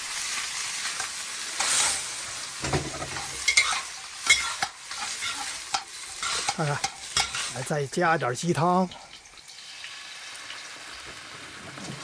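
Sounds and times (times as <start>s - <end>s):
low sizzle of cattail shoots and dried shrimp stir-frying: 0.0s - 12.0s
stir-frying cut cattail shoots with dried shrimp, scraping and tossing: 1.0s - 7.7s
speech: 6.6s - 7.0s, 7.6s - 9.0s.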